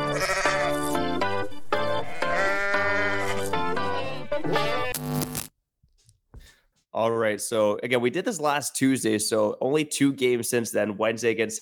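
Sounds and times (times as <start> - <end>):
goat bleating: 0.0 - 1.0, 2.0 - 5.0
speech: 7.0 - 11.6.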